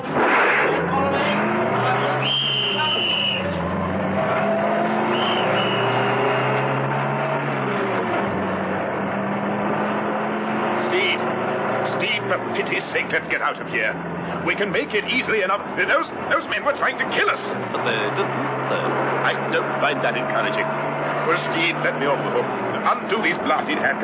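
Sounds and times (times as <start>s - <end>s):
armored car heavy engine starting and roaring off at speed: 0.0s - 24.0s
brief high squeals: 5.1s - 6.1s
speech: 12.9s - 24.0s.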